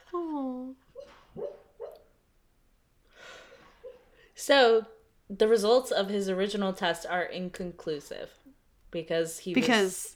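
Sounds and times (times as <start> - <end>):
dog barking softly while dreaming: 1.0 - 2.1
speech: 4.4 - 10.1.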